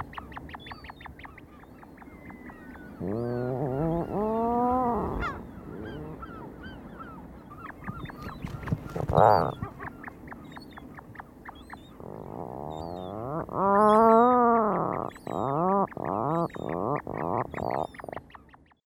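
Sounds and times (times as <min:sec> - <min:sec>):
Atlantic puffin Fratercula arctica low drawn-out groaning calls: 0:02.9 - 0:06.7, 0:08.8 - 0:09.9, 0:11.9 - 0:18.1.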